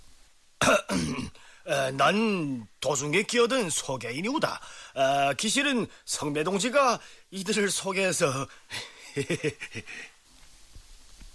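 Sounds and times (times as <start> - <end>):
man dry coughing to clear throat at a matchmaking gathering: 0.6 - 1.4
speech: 0.9 - 10.1
laughter: 9.0 - 10.1.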